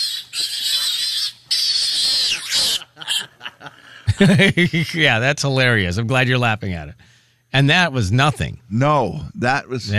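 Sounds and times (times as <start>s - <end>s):
pig squealing while being picked up: 0.0s - 3.4s
laughter: 2.0s - 5.1s
speech: 4.2s - 9.9s.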